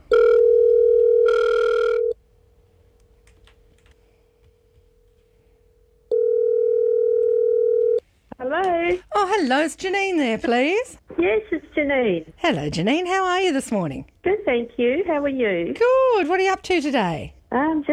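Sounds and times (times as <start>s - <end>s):
steady loud telephone tone: 0.0s - 2.2s, 6.1s - 8.0s
speech: 9.4s - 17.9s.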